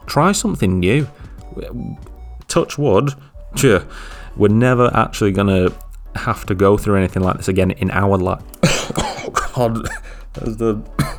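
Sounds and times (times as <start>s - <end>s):
speech: 0.1s - 11.1s
harsh chesty coughs with a throaty rasp: 8.5s - 11.1s.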